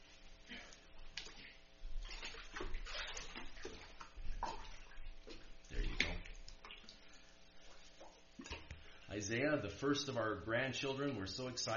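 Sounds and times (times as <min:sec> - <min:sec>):
water sloshing as someone wades into a church baptistry for a baptism: 0:00.0 - 0:09.1
speech: 0:09.2 - 0:11.7.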